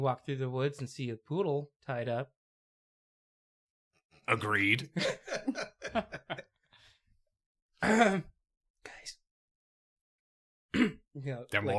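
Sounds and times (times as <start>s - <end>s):
speech: 0.0s - 2.4s, 4.3s - 6.5s, 7.8s - 8.3s, 10.8s - 11.7s
laughter: 5.0s - 6.6s
person clearing throat: 7.8s - 8.3s, 10.7s - 11.0s.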